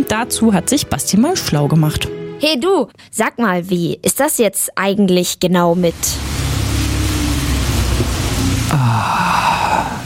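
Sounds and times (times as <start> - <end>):
speech: 0.0 - 6.4, 8.7 - 9.5
rain falling: 5.8 - 10.0
low rumbling hum: 5.9 - 10.0.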